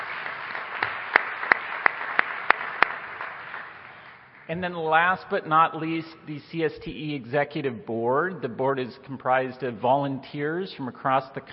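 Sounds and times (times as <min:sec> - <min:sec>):
conference audience applauding: 0:00.0 - 0:04.4
louder evenly spaced claps: 0:00.0 - 0:04.5
speech: 0:04.5 - 0:11.5.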